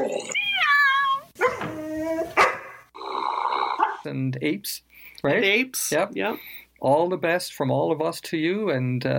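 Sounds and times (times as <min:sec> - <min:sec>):
sharp dog barks and yelps: 0:00.1 - 0:02.9, 0:03.7 - 0:04.1
drawn-out cat meows with sliding pitch: 0:00.3 - 0:02.0
speech: 0:04.1 - 0:09.1.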